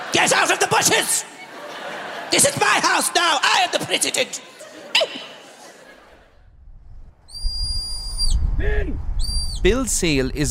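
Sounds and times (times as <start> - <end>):
laughter: 0.0 - 6.5
speech: 0.2 - 1.3, 2.3 - 4.5, 9.6 - 10.5
shrill steady whistle blast as a command: 7.3 - 8.4, 9.2 - 9.6.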